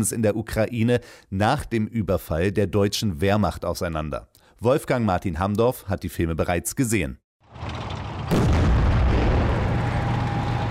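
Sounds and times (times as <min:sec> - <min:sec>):
speech: 0:00.0 - 0:08.5
heavy explosion from war film footage: 0:08.2 - 0:10.6.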